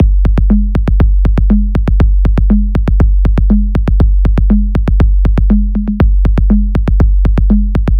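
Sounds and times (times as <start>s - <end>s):
layered music loops: 0.0s - 7.9s.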